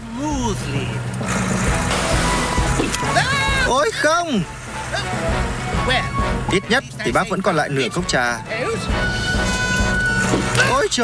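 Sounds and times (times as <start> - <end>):
Mercury car engine roaring while driven faster: 0.0 - 11.0
speech: 0.5 - 1.1, 3.8 - 4.6, 5.9 - 9.5, 10.8 - 11.0.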